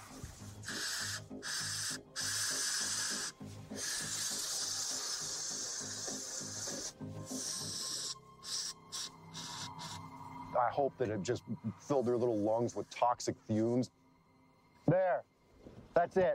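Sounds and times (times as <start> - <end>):
bear spray hissing from an aerosol canister: 0.0 - 10.2
speech: 10.7 - 14.0, 14.9 - 15.3, 16.0 - 16.3.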